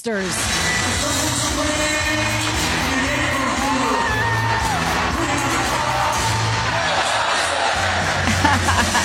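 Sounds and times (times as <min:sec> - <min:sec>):
large concert crowd in Montreal cheering and whooping: 0:00.4 - 0:09.0
laughter: 0:01.0 - 0:09.0
scattered yells from concert crowd: 0:02.2 - 0:08.2.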